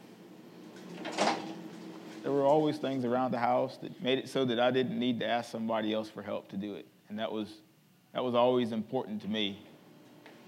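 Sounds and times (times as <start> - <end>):
door pulled open by a strap with the shoulder: 0.7 - 2.2
speech: 2.2 - 9.7.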